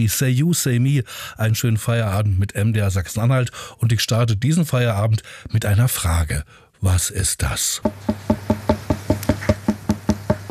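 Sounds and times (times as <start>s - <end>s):
speech: 0.0s - 8.6s
bright hollow knocks: 7.8s - 10.5s.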